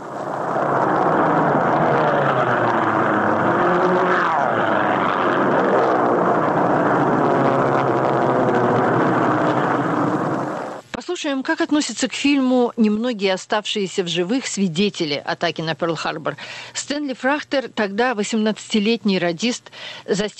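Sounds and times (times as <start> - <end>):
Japanese propeller planes flying low overhead: 0.0 - 10.8
speech: 11.2 - 20.3.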